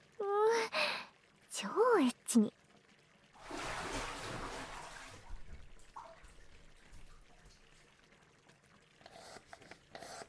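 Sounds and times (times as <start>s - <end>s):
speech: 1.6s - 2.6s
hot water splashing into hands: 3.4s - 7.8s.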